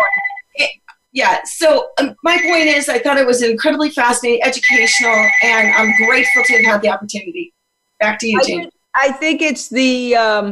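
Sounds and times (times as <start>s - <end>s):
home telephone ringing with electronic trill: 0.0s - 0.5s, 2.3s - 3.0s, 4.4s - 6.9s
speech: 0.6s - 10.5s.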